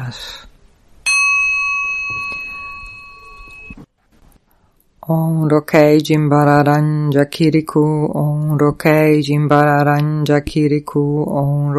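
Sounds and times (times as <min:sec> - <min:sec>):
speech: 0:00.1 - 0:00.4, 0:05.1 - 0:11.7
bell being struck: 0:01.0 - 0:03.8.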